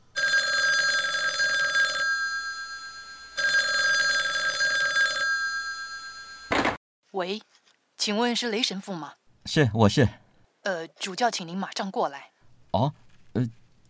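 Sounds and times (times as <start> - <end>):
telephone bell ringing: 0.1 - 6.6
speech: 7.2 - 13.6.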